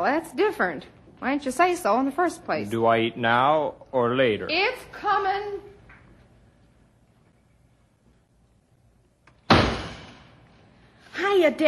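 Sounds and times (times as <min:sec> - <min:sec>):
speech: 0:00.0 - 0:05.7, 0:11.2 - 0:11.6
door slamming shut: 0:09.4 - 0:10.4.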